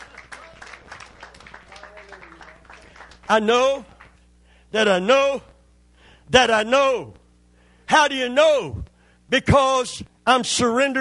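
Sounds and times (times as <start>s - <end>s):
audience applauding: 0.0s - 4.2s
speech: 3.3s - 3.9s, 4.7s - 5.5s, 6.3s - 7.2s, 7.9s - 11.0s.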